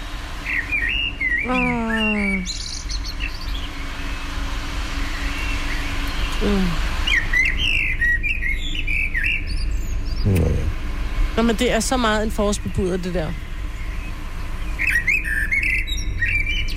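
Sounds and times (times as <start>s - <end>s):
low hum: 0.0s - 16.7s
blackbird singing: 0.5s - 3.7s, 6.2s - 10.7s, 13.3s - 16.7s
speech: 1.4s - 2.6s, 6.4s - 6.8s, 11.4s - 13.4s.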